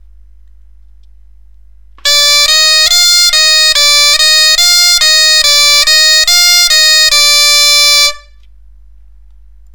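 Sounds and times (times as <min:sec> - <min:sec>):
bombarde playing a D E F scale: 0:02.1 - 0:08.4.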